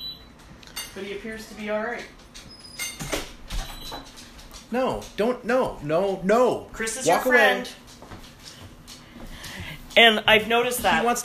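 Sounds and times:
speech: 0:01.0 - 0:02.2, 0:03.9 - 0:07.8, 0:10.0 - 0:11.2
door opening to let a dog in: 0:02.4 - 0:04.2.

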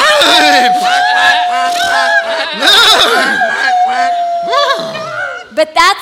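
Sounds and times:
laughter: 0:00.0 - 0:05.5
several voices imitating horse neighs: 0:00.0 - 0:05.6.

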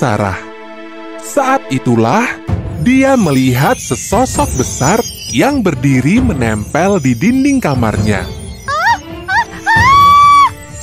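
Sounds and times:
speech: 0:00.0 - 0:00.5, 0:01.2 - 0:08.4
woman screaming with high-pitched cries and a shriek: 0:08.7 - 0:10.6.

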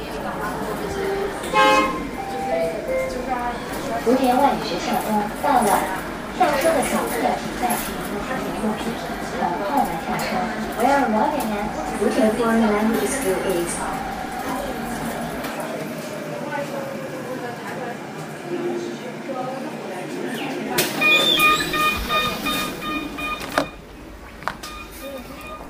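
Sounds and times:
moving city bus rattling and rumbling inside: 0:00.0 - 0:18.4, 0:20.6 - 0:25.6
voices: 0:00.0 - 0:24.3
brief tonal beep: 0:21.0 - 0:23.8.

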